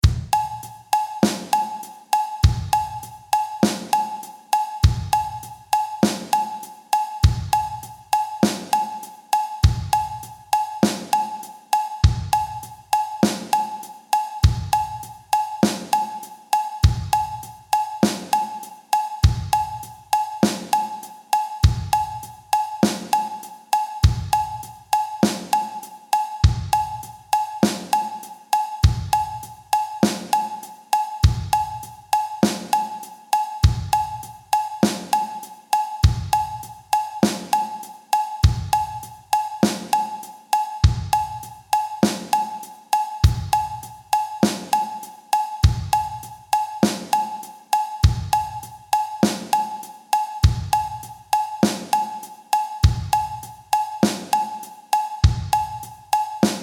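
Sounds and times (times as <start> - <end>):
sixteenth note drum groove: 0.0 - 56.6.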